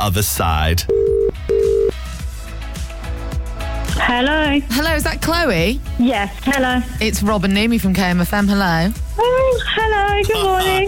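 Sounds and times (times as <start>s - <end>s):
speech: 0.0s - 1.4s, 4.0s - 10.8s
telephone ringing with a mid-pitched electronic tone: 0.9s - 2.0s.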